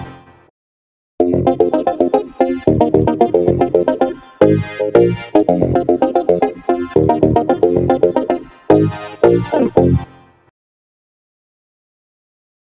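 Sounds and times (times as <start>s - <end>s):
polyphonic synth transient: 1.2s - 10.1s.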